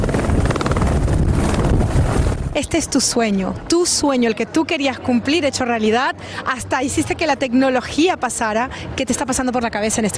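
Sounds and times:
helicopter rotor blades chopping over engine rumble: 0.0s - 2.6s
wind buffeting: 0.0s - 3.7s
speech: 2.6s - 10.1s.

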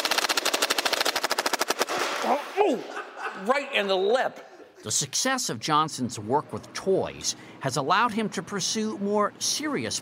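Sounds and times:
Nerf toy gun firing: 0.0s - 2.2s
speech: 2.2s - 10.0s
laughter: 2.6s - 4.9s.

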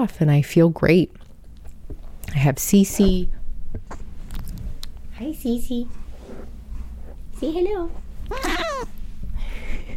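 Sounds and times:
speech: 0.0s - 1.2s, 2.3s - 3.4s, 5.2s - 6.0s, 7.4s - 9.0s
19-year-old cat meowing: 8.3s - 8.9s.

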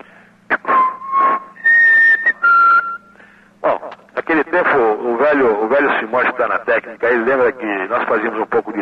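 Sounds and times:
faint hum: 0.0s - 8.8s
person whistling a birdlike melody imitating uirapuru bird song: 0.7s - 3.1s
speech: 4.6s - 8.8s.

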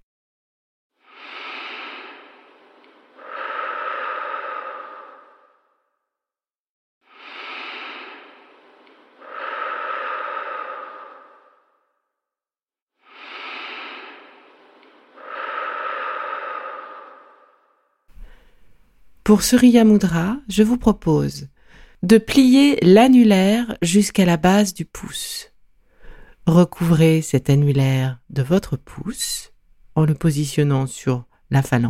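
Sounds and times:
slow deep breaths during a guided relaxation exercise: 1.0s - 6.1s, 7.0s - 12.1s, 13.0s - 19.2s, 21.5s - 22.0s, 25.5s - 26.5s
speech: 19.3s - 25.5s, 26.4s - 31.8s.

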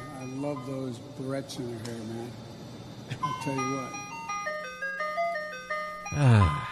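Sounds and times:
tinny electronic ice cream truck jingle: 0.0s - 1.7s, 3.1s - 6.7s
speech: 0.4s - 2.5s, 3.1s - 4.1s, 6.1s - 6.7s.

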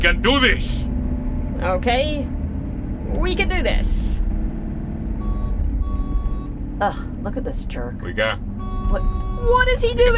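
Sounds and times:
speech: 0.0s - 0.9s, 1.6s - 2.4s, 3.1s - 4.3s, 6.8s - 10.1s
bus engine rumbling: 0.0s - 10.1s
electronic beeps: 5.2s - 6.6s, 8.6s - 10.1s.

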